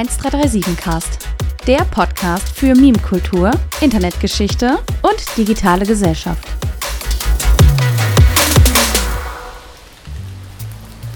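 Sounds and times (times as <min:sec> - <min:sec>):
speech: 0:00.0 - 0:06.6
sharp distinct rain taps on windows: 0:06.1 - 0:11.1
rain pattering against windows: 0:09.2 - 0:11.1.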